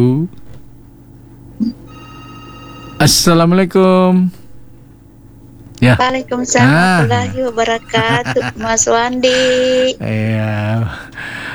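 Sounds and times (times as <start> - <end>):
electronic telephone ringing: 1.6 - 3.5, 4.4 - 10.1
speech: 3.0 - 4.4, 5.8 - 11.4
laughter: 5.8 - 11.2.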